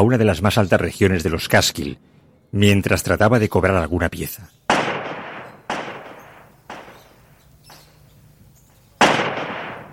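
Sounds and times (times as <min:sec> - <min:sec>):
speech: 0:00.0 - 0:04.7
gunshots echoing in the mountains: 0:04.7 - 0:07.8, 0:09.0 - 0:09.9.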